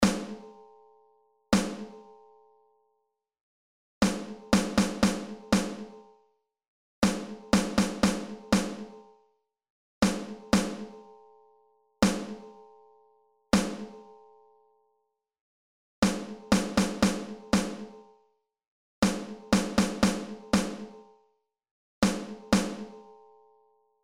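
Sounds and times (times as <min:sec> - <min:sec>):
snare drum rhythms: 0:01.6 - 0:01.8, 0:04.0 - 0:05.9, 0:07.0 - 0:08.9, 0:10.0 - 0:10.8, 0:13.6 - 0:13.9, 0:16.0 - 0:17.8, 0:19.0 - 0:20.9, 0:22.0 - 0:22.9.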